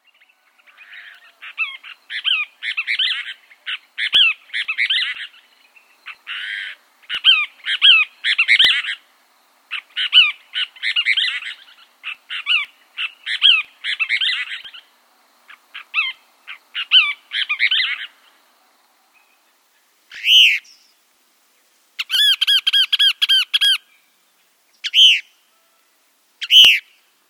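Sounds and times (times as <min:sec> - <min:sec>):
Cassin's Kingbird calling: 0:00.3 - 0:09.1, 0:09.7 - 0:14.9, 0:15.5 - 0:18.3, 0:20.1 - 0:20.8, 0:22.0 - 0:23.9, 0:24.8 - 0:27.0.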